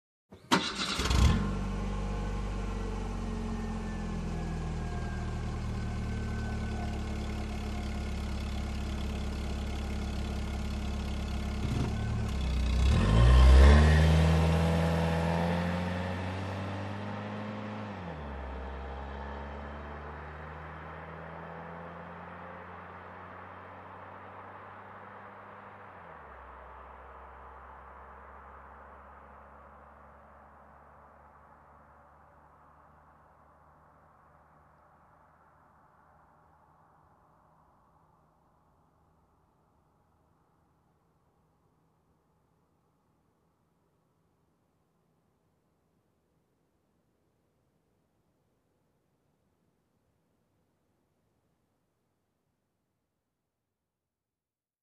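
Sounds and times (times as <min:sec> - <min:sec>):
car engine ignition: 0:00.4 - 0:25.9
car driving away: 0:00.5 - 0:30.0.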